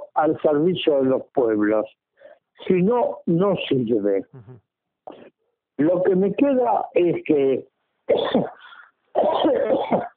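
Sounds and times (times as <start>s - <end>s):
speech: 0.2s - 2.0s, 2.6s - 5.2s, 5.8s - 10.1s
person coughing during a spoken interview: 8.1s - 10.1s.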